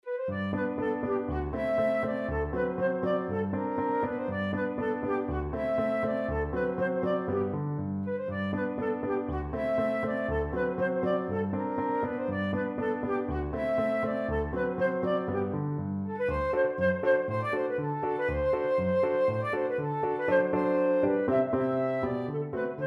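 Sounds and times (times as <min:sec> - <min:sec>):
flute playing an ecossaise: 0:00.0 - 0:22.8.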